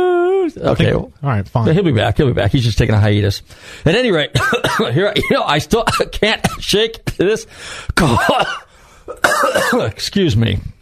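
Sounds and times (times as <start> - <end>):
speech: 0.5 - 10.8
loud voiced throaty coughing: 4.4 - 5.0, 8.0 - 10.0.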